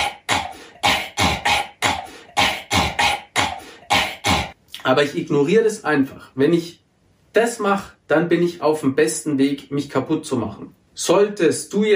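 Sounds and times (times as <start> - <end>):
voice imitating a harsh hacking smoker's cough: 0.0 - 4.6
speech: 4.9 - 6.8, 7.4 - 11.9.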